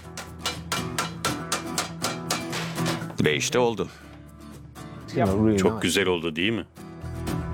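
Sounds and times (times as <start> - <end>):
hammer blows turning over the edge of a handmade aluminium panel: 0.0 - 3.1
speech: 3.2 - 4.0, 5.1 - 6.8.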